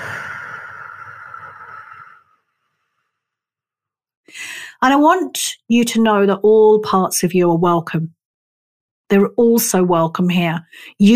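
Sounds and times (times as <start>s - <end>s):
slow deep breath released through the mouth in a guided breathing exercise: 0.0s - 3.0s
speech: 4.8s - 8.2s, 9.1s - 11.1s.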